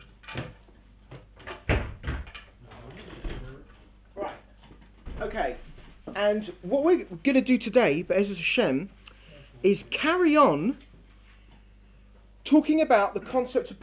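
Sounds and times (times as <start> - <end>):
door pulled shut in a room: 1.4 - 2.5
speech: 6.2 - 8.9, 9.6 - 10.9, 12.5 - 13.8.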